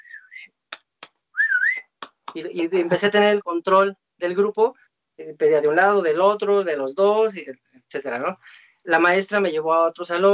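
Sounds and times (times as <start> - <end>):
person whistling to divide a group in a kindergarten: 0.0 - 0.6, 1.3 - 1.9
speech: 2.3 - 10.3.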